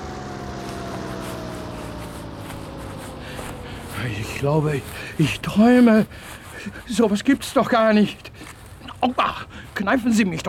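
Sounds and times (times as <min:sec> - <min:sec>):
landing helicopter engine roar: 0:00.0 - 0:06.6
helicopter droning whine: 0:00.0 - 0:07.0
helicopter rotor blades pulsing: 0:00.0 - 0:07.0
speech: 0:04.0 - 0:10.4.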